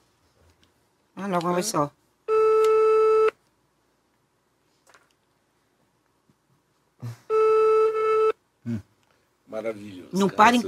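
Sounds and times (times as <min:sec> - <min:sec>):
speech: 0:01.2 - 0:02.0, 0:09.6 - 0:10.6
outgoing call telephone ringing tone through the receiver: 0:02.3 - 0:03.4, 0:07.3 - 0:08.4.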